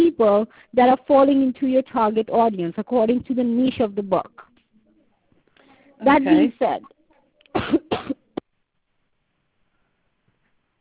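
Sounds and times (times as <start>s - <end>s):
speech: 0.2s - 4.5s, 6.0s - 7.9s
person with a sore throat coughing: 7.5s - 8.4s.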